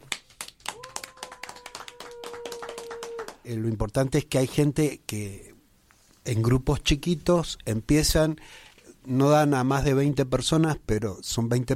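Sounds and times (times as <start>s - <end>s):
small group clapping hands: 0.0s - 3.5s
speech: 3.5s - 5.5s, 6.3s - 11.7s.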